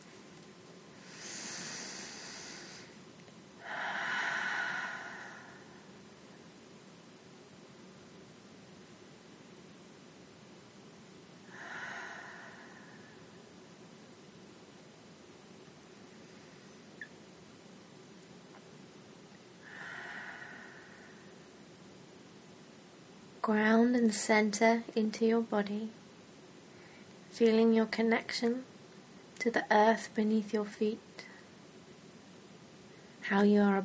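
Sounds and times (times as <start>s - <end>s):
slow deep breaths during a guided meditation: 1.0s - 3.0s, 3.6s - 6.0s, 11.4s - 13.5s, 19.6s - 21.5s
speech: 23.4s - 26.0s, 27.4s - 28.7s, 29.4s - 31.1s, 33.3s - 33.8s.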